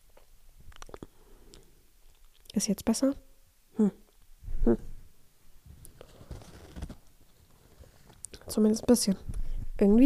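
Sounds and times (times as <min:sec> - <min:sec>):
sticky mouth clicks and smacks: 0:00.1 - 0:02.6
person swallowing: 0:00.7 - 0:01.2, 0:04.5 - 0:05.0
speech: 0:02.6 - 0:04.0, 0:04.7 - 0:04.9, 0:08.5 - 0:10.0.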